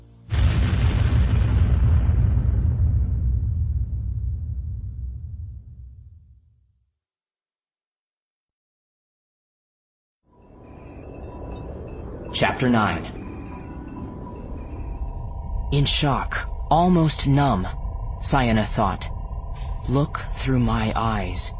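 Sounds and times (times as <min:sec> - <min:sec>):
massive explosion of a planet blasted apart by a space station: 0:00.3 - 0:06.6, 0:13.0 - 0:21.5
low swell: 0:10.4 - 0:21.5
speech: 0:12.4 - 0:13.2, 0:15.7 - 0:19.1, 0:19.9 - 0:21.5.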